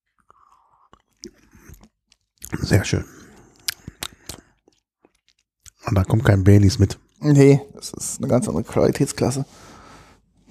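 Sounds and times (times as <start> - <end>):
person sipping and swallowing an almond milk drink: 0.1 - 5.8
speech: 2.6 - 3.2, 5.9 - 9.8.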